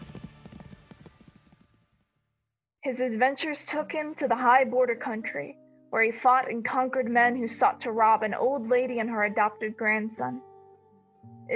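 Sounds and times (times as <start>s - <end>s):
white horse galloping hoofbeats: 0.0s - 2.2s
speech: 2.9s - 10.5s.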